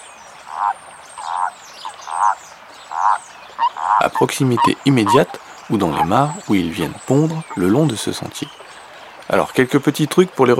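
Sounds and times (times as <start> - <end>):
faint hiss: 0.0 - 10.5
common toad croaking: 0.4 - 6.5
speech: 0.6 - 8.6, 9.3 - 10.5.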